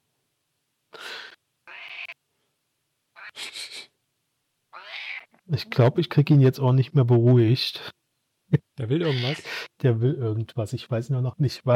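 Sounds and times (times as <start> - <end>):
cat meowing insistently: 1.7 - 2.2, 3.2 - 3.4, 4.7 - 5.4, 9.0 - 9.5
speech: 5.5 - 8.0, 8.8 - 11.7.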